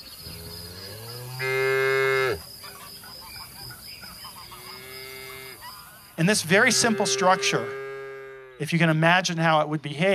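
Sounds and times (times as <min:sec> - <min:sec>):
free-range cow mooing on a ranch: 0:00.2 - 0:02.4, 0:04.6 - 0:05.6, 0:06.4 - 0:08.7
speech: 0:06.2 - 0:07.8, 0:08.6 - 0:10.1.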